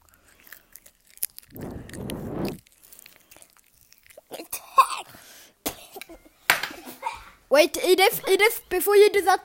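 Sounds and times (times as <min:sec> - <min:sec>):
crunchy biting and chewing of a leaf: 0:00.0 - 0:04.8
small mouth noises: 0:01.5 - 0:02.6
person coughing: 0:05.7 - 0:06.1
speech: 0:07.6 - 0:09.4.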